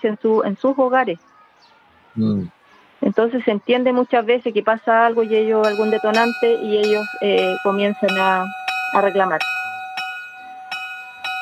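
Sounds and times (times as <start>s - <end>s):
speech: 0.0s - 1.3s, 2.2s - 9.5s
school bell ringing for end of recess: 5.1s - 11.4s.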